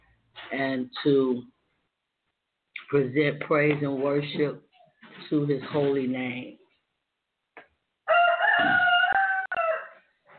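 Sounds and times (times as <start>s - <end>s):
speech: 0.5s - 1.6s, 2.9s - 6.6s
rooster crowing: 8.0s - 10.1s.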